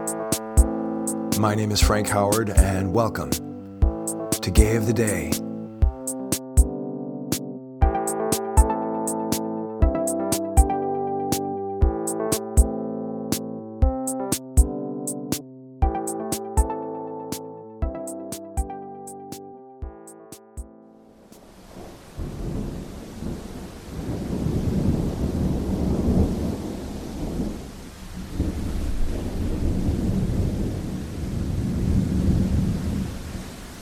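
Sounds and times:
dramatic music: 0.0s - 20.7s
speech: 1.4s - 3.5s, 4.4s - 5.5s
steady heavy rain in a thunderstorm: 21.4s - 33.8s
deep rolling thunder: 21.7s - 33.4s.

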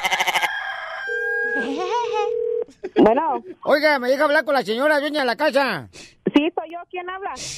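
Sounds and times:
rooster crowing: 0.0s - 1.8s
speech: 3.0s - 7.5s.

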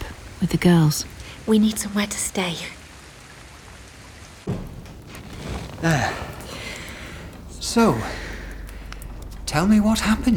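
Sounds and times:
rain falling: 0.0s - 10.3s
speech: 0.4s - 2.8s, 5.8s - 6.2s, 7.7s - 8.2s, 9.6s - 10.3s
low heavy thump: 4.5s - 5.0s.

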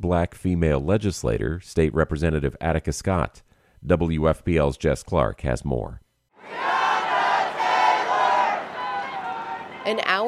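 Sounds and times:
speech: 0.0s - 6.7s, 9.8s - 10.2s
protest crowd chanting while marching: 6.4s - 10.2s.

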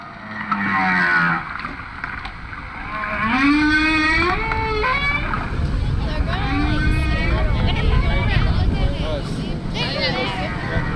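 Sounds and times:
male humpback whale song recorded underwater by hydrophone: 0.0s - 8.4s
steady rumble of water and engine noise: 0.0s - 10.9s.

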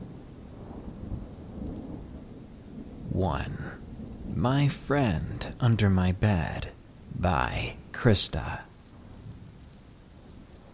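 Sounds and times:
continuous rain in a thunderstorm: 0.0s - 10.7s
deep rolling rumble of thunder: 0.0s - 10.7s
speech: 3.2s - 8.7s.

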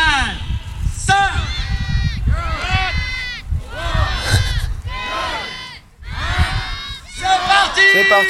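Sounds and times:
crowd of about a hundred children in Épinal shouting and cheering as they set off running: 1.4s - 8.2s.

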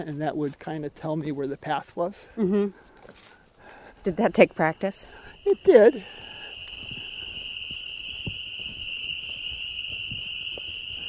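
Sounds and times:
speech: 0.0s - 3.4s, 4.0s - 6.3s
chorus of spring peeper frogs calling at night: 4.1s - 11.0s.

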